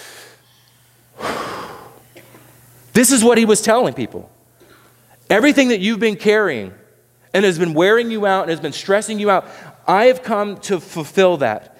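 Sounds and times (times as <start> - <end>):
deep breath taken in and let out: 0.0 - 2.2, 9.4 - 9.8
speech: 3.0 - 4.4, 5.3 - 11.7.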